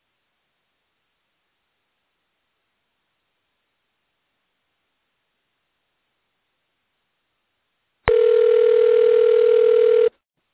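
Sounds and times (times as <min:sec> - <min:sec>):
electronic telephone ring tone over a phone line: 0:08.1 - 0:10.1.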